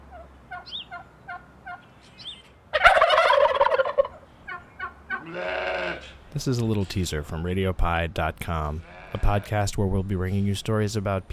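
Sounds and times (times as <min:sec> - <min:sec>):
turkey flock clucking and yelping: 0:00.0 - 0:06.2
turkeys gobbling: 0:00.0 - 0:07.0
speech: 0:06.3 - 0:11.3.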